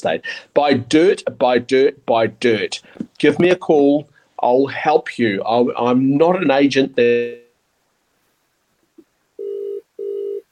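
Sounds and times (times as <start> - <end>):
speech: 0.0 - 7.4
ringback tones from an outgoing phone call: 9.4 - 10.5.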